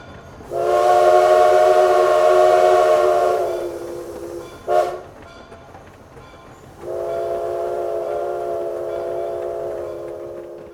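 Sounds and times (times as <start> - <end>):
train horn blasts coming out of a tunnel into a station: 0.5 - 5.1, 6.8 - 10.7.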